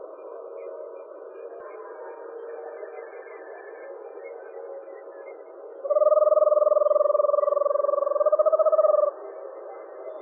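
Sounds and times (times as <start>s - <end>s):
Eastern screech owl giving a low pulsed trill: 5.9s - 9.1s.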